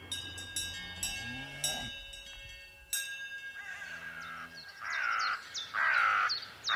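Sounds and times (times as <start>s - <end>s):
carrion crows cawing in a valley: 3.6s - 6.7s.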